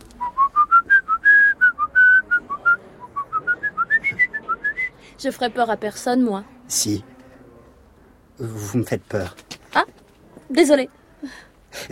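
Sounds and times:
person whistling a melodic tune: 0.2s - 5.0s
speech: 5.2s - 7.1s, 8.4s - 11.8s.

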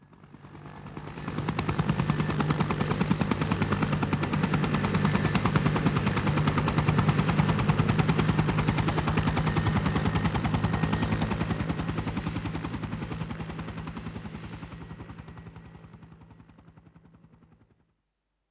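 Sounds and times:
helicopter spinning rotor chopping: 0.9s - 14.8s.

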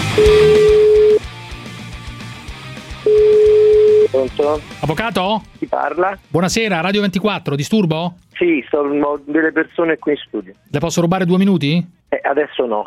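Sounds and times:
dense busy sound: 0.2s - 1.2s
telephone ringback tone on an outgoing call: 0.2s - 1.2s, 3.1s - 4.2s
speech: 4.3s - 12.8s.

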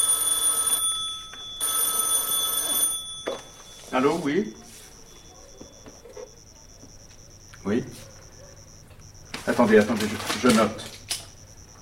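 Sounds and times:
old black telephone ringing with a thin silvery bell: 0.0s - 6.7s
speech: 3.9s - 4.7s, 7.6s - 8.0s, 9.5s - 11.0s.

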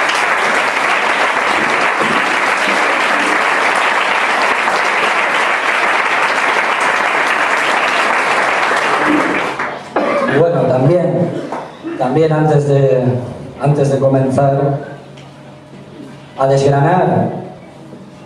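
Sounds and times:
audience applause at a campaign presentation: 0.0s - 10.2s
speech: 10.8s - 11.1s, 12.0s - 14.9s, 16.4s - 17.4s.

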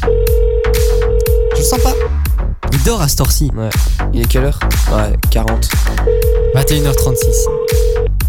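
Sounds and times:
telephone ringback tones on an outgoing call: 0.1s - 2.1s, 6.1s - 8.1s
speech: 2.9s - 8.1s.

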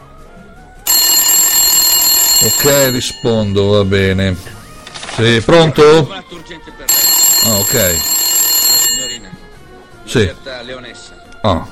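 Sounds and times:
telephone ringing with electronic trill: 0.9s - 4.8s, 6.9s - 9.6s
speech: 2.4s - 4.6s, 5.2s - 8.1s, 10.1s - 11.6s.

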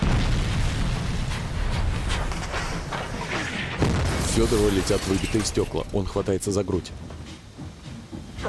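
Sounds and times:
artillery shells bursting on both sides of a steam locomotive: 0.0s - 6.5s
speech: 4.4s - 7.2s.

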